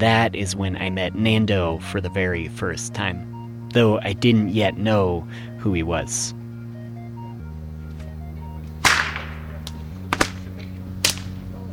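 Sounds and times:
speech: 0.0 - 6.4
low hum: 0.0 - 11.7
whip cracking: 8.8 - 11.4.

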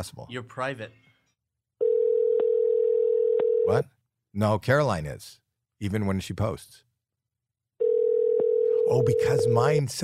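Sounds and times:
speech: 0.0 - 1.1, 3.7 - 6.8, 8.9 - 10.0
steady electronic phone tone of an unanswered call: 1.8 - 3.7, 7.8 - 9.7.

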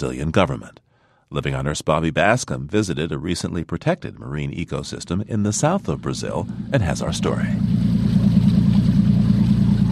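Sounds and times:
speech: 0.0 - 7.8
motorboat engine running along Ipanema Beach in Brazil: 5.6 - 9.9.

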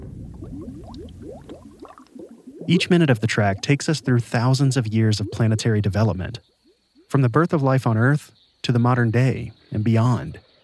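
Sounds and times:
thick gloopy lava bubbling and popping over a low rumbling churn: 0.0 - 7.2
speech: 0.8 - 1.9, 2.7 - 6.5, 7.1 - 10.4.

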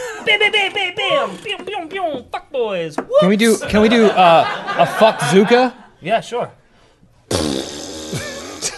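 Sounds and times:
speech: 0.2 - 6.6
laughter: 3.4 - 5.9
person blowing a loud raspberry imitating a fart as Foley: 7.3 - 8.7.

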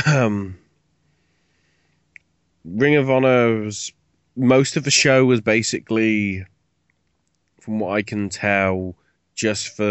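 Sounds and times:
short voiced throat-clearing cough: 0.0 - 0.5
speech: 0.1 - 0.6, 2.6 - 6.5, 7.6 - 9.8.

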